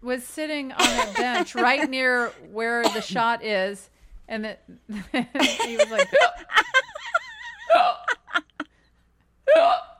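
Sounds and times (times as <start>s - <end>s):
speech: 0.0s - 6.9s
laughter: 0.8s - 2.2s, 5.3s - 8.7s
person vocally imitating deep hiccups: 7.7s - 8.2s, 9.4s - 9.9s.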